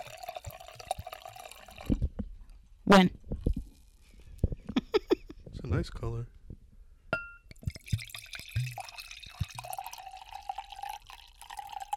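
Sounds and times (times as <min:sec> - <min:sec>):
drink poured into a wine glass: 0:00.0 - 0:02.1, 0:07.5 - 0:11.9
speech: 0:02.9 - 0:03.2, 0:05.8 - 0:06.4
glass clinks: 0:07.2 - 0:10.4.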